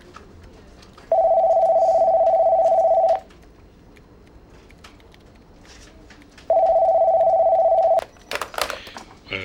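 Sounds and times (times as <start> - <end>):
telephone ringing with a steady electronic tone: 1.1 - 3.2, 6.5 - 8.1.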